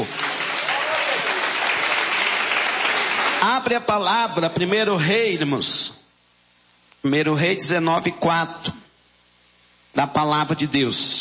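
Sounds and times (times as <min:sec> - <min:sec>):
church congregation clapping hands hard and loudly: 0:00.0 - 0:03.8
speech: 0:03.4 - 0:06.0, 0:07.0 - 0:08.8, 0:10.0 - 0:11.1.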